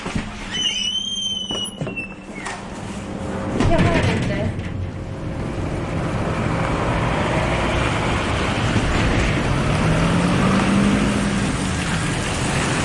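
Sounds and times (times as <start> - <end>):
high squeals: 0.4 - 2.6
car engine rumbling driving down into a mine: 2.6 - 12.8.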